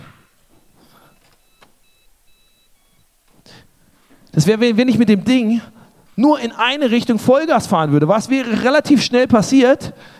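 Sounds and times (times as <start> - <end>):
rustling and handling noise: 0.0 - 4.5
short high-pitched electronic beeps from a music device pairing with a phone: 1.0 - 3.2
speech: 4.4 - 10.1.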